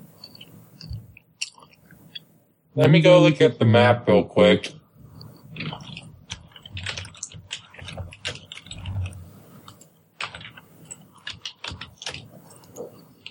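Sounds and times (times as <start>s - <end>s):
speech: 2.8s - 4.8s
fingers typing on a computer keyboard: 5.2s - 13.2s.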